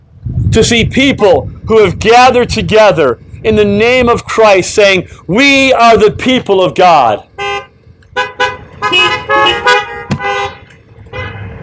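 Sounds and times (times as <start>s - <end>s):
low rumble of traffic: 0.0s - 11.6s
speech: 0.5s - 7.3s
car horns honking: 7.0s - 11.6s.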